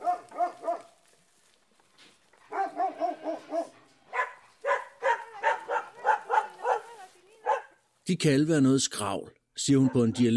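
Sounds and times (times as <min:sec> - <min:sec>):
stray shepherd dogs barking on mountain roads in southern Italy: 0:00.0 - 0:01.0, 0:02.5 - 0:07.8, 0:09.7 - 0:10.3
speech: 0:08.1 - 0:10.3.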